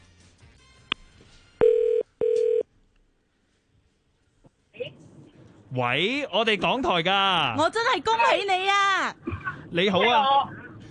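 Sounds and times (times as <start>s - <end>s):
telephone dialing tones placing a call: 1.6s - 2.6s
speech: 5.7s - 10.6s.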